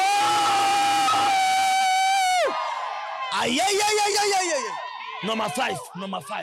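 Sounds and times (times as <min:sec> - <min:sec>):
crowd shouting praise: 0:00.0 - 0:06.4
speech: 0:03.5 - 0:06.4.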